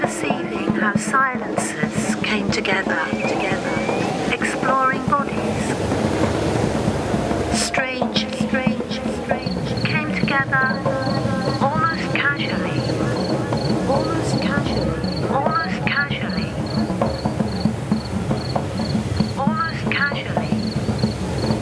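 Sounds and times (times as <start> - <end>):
loud broadband rumble of passing motorway traffic: 0.0 - 21.5
speech: 0.8 - 3.6
cicadas chirping near a motorway: 3.0 - 4.4, 8.2 - 21.5.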